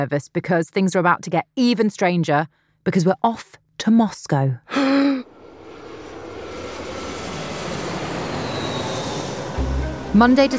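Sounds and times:
speech: 0.0 - 5.0, 10.2 - 10.5
airplane engine roaring at Moscow Domodedovo Airport on a freezing December day: 5.3 - 10.5
faint high whine of an airplane engine: 5.3 - 10.5.

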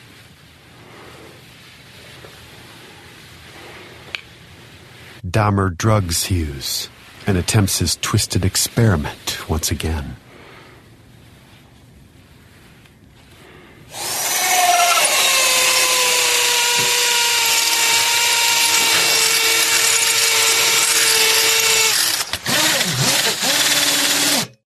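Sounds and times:
speech: 5.2 - 10.2
power saw or drill whining: 13.9 - 24.6.

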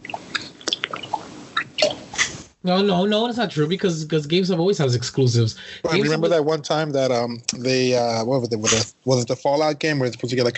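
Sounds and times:
water sloshing and dripping: 0.0 - 2.2
speech: 2.6 - 10.5.

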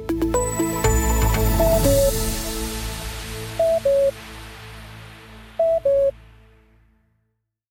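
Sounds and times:
bright synthesized chord flourish of a radio cuckoo signal: 0.0 - 6.2
two-note falling electronic cuckoo calls of a radio signal: 1.6 - 2.1, 3.6 - 4.1, 5.6 - 6.1.

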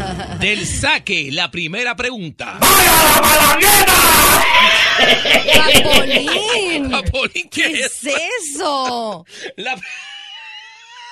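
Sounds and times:
speech: 0.4 - 10.1
person screaming loudly with high-pitched shriek: 2.6 - 5.0
laughter: 4.4 - 7.8.

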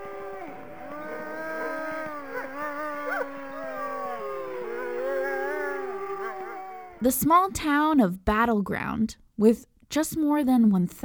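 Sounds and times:
wolves howling at a wolf park in Battleground Indiana: 0.0 - 7.1
speech: 7.0 - 11.0.

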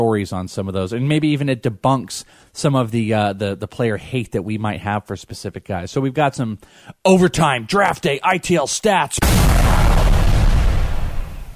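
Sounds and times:
speech: 0.0 - 10.1
booming explosion sound effect with low rumble: 9.2 - 11.5.

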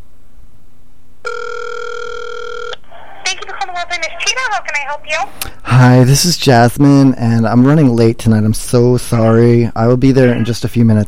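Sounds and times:
phone ringing burble: 1.2 - 2.8
woman's recorded voicemail greeting: 3.2 - 5.3
speech: 4.0 - 11.0.

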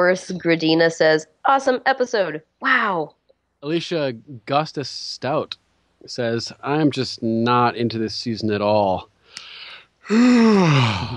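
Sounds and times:
speech: 0.0 - 9.1, 10.1 - 11.1
breathy intake of air: 9.3 - 11.1
person yawning: 10.0 - 11.1.

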